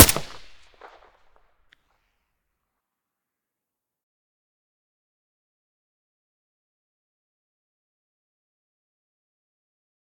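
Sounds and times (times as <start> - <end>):
AK-74U rifle shot with silencer: 0.0 - 1.1.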